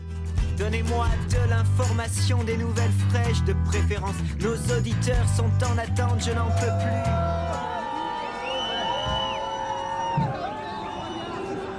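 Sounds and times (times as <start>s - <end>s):
speech: 0.6s - 7.6s
large crowd cheering and whooping in a wave: 5.6s - 11.7s.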